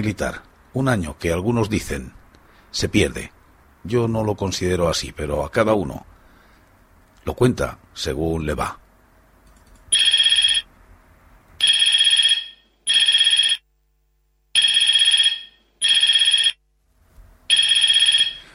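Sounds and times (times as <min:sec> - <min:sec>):
speech: 0:00.0 - 0:06.1, 0:07.2 - 0:08.8
loud electronic telephone ringtone with bright buzzy trills: 0:10.0 - 0:10.7, 0:11.6 - 0:13.6, 0:14.6 - 0:16.6, 0:17.5 - 0:18.5.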